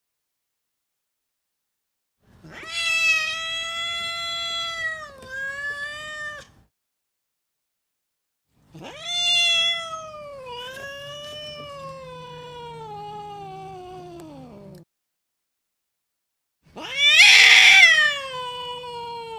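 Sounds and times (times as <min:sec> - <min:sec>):
angry cat yowling: 0:02.4 - 0:06.6, 0:08.7 - 0:14.8, 0:16.8 - 0:19.3.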